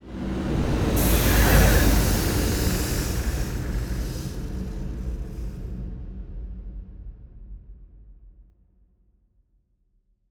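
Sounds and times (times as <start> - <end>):
juggernaut ship moving: 0.2 - 5.7.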